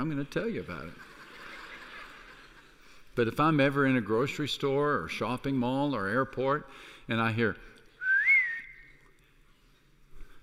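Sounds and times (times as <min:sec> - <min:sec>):
speech: 0:00.0 - 0:01.2, 0:03.2 - 0:07.7
laughter: 0:00.5 - 0:03.1
person whistling a family signal whistle: 0:08.0 - 0:09.0.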